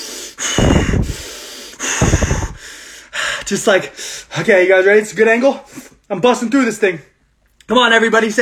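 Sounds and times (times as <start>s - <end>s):
forceful noisy breaths with sharp inhales and heavy exhales: 0.0s - 4.4s
speech: 3.5s - 7.1s, 7.7s - 8.4s.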